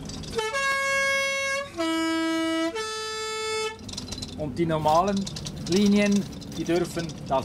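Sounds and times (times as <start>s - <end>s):
Swiss postbus three-tone horn on a mountain postbus line: 0.3s - 3.9s
speech: 4.4s - 7.4s.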